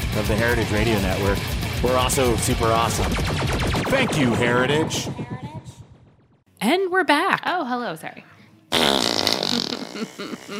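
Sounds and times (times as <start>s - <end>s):
speech: 0.2s - 5.4s, 6.6s - 8.3s, 10.0s - 10.5s
loud buzzy fart noise blown with the mouth: 8.7s - 10.5s.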